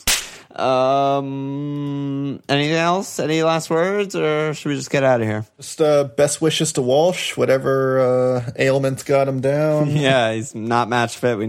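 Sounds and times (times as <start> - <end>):
whip-crack sound effect: 0.0 - 0.4
speech: 0.0 - 11.4.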